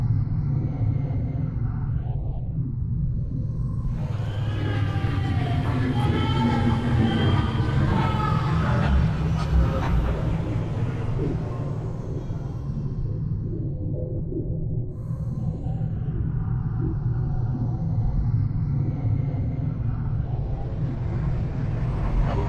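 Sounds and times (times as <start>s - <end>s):
hell portal idle drone: 0.1s - 22.4s.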